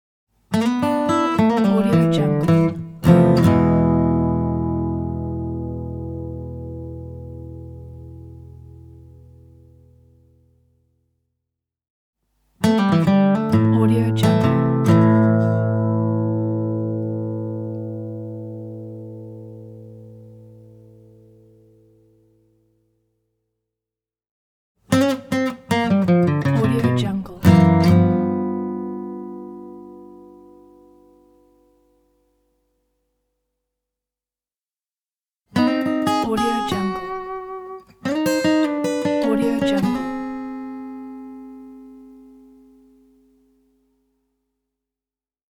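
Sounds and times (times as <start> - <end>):
acoustic blues idents: 0.5 - 10.0, 12.6 - 22.0, 24.9 - 31.8, 35.5 - 43.2.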